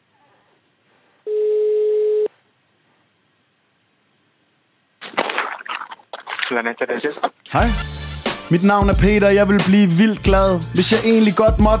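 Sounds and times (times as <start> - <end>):
quiet phone line hiss: 1.2 - 2.3
telephone ringback tone over a phone line: 1.3 - 2.3
speech: 6.5 - 11.7.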